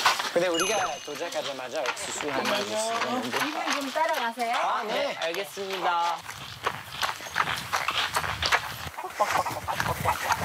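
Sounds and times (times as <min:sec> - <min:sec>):
scuffling footstep-like taps: 0:00.0 - 0:10.4
speech: 0:00.4 - 0:06.8, 0:09.2 - 0:10.4
chickens clucking at a corn field: 0:08.9 - 0:10.4.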